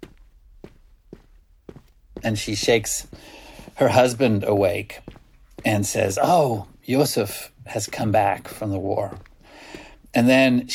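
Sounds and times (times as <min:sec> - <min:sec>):
footsteps on a sidewalk: 0:00.0 - 0:10.7
speech: 0:02.2 - 0:09.3, 0:10.1 - 0:10.7.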